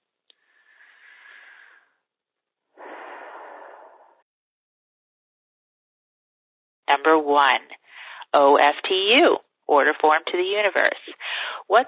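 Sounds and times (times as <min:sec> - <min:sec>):
deep slow breathing: 0:00.4 - 0:02.0, 0:02.7 - 0:04.2
speech: 0:06.9 - 0:11.8.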